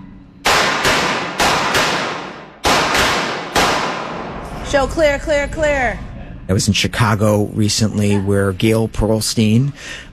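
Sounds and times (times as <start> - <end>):
gunshots at a shooting range during firearm instruction: 0.4 - 4.4
speech: 4.7 - 10.1.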